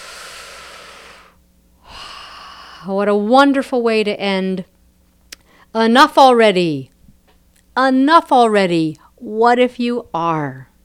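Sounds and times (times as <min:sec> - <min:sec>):
deep breath: 0:00.0 - 0:02.9
speech: 0:02.8 - 0:04.7, 0:05.7 - 0:06.9, 0:07.8 - 0:10.7.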